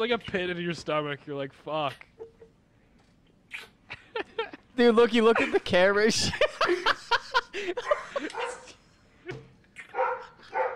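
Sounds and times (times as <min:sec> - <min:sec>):
speech: 0:00.0 - 0:02.1, 0:04.8 - 0:07.0, 0:07.6 - 0:08.6
laughter: 0:03.9 - 0:09.4
dog barking: 0:07.8 - 0:08.7, 0:09.9 - 0:10.7.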